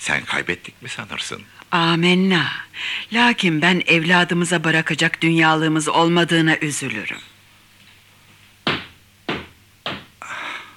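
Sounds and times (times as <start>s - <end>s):
speech: 0.0s - 7.3s
knocking on a wooden door: 8.6s - 10.1s.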